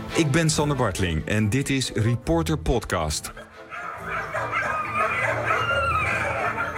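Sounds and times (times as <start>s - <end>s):
speech: 0.2s - 3.5s
dogs barking in an animal shelter kennel: 3.3s - 6.7s.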